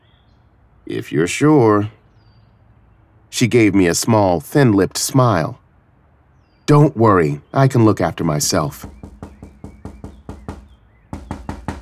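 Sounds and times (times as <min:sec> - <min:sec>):
speech: 0:00.9 - 0:02.0, 0:03.3 - 0:05.6, 0:06.7 - 0:09.0
sharp solid knocks on a door: 0:08.6 - 0:11.7.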